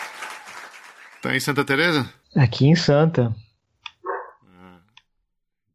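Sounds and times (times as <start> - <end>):
speech: 1.3 - 3.4
dog barking in the neighborhood: 4.0 - 4.5.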